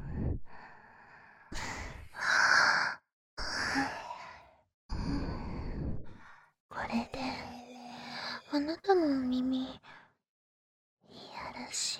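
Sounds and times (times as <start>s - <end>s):
soft breathy sighs and exhalations into the ear: 0.0s - 8.6s
speech: 8.6s - 9.9s.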